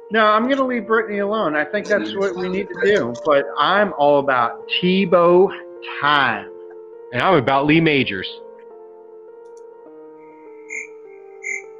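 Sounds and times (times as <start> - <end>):
speech: 0.1 - 6.5, 7.1 - 8.4
laughter: 1.8 - 3.2
crickets chirping: 10.3 - 11.7.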